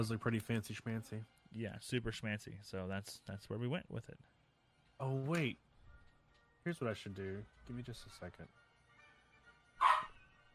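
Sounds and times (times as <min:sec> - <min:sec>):
speech: 0:00.0 - 0:04.4, 0:05.0 - 0:05.6, 0:06.6 - 0:08.6
dog barking: 0:09.8 - 0:10.2.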